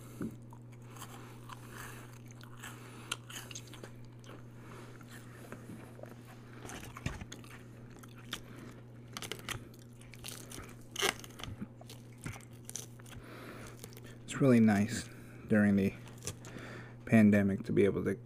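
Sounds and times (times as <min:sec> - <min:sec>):
crunchy chewing of salad with croutons and hard-boiled egg: 0:00.0 - 0:14.3, 0:16.0 - 0:16.7
low steady hum: 0:00.0 - 0:18.2
speech: 0:14.4 - 0:16.0, 0:17.1 - 0:18.2.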